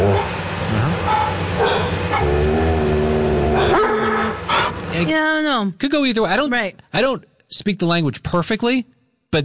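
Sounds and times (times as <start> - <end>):
dogs barking: 1.0 - 2.4, 3.4 - 4.8
dogs growling: 1.1 - 4.8
speech: 5.1 - 9.4.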